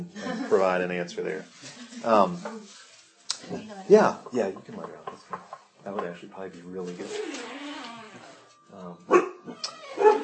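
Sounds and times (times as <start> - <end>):
speech: 0.0 - 2.8, 3.4 - 7.6, 8.2 - 10.2
dog barking: 9.1 - 10.2.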